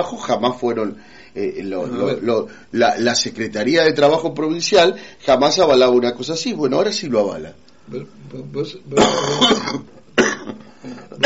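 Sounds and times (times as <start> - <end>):
speech: 0.0 - 10.3
person coughing harshly and clearing throat in a conversation: 9.0 - 11.2.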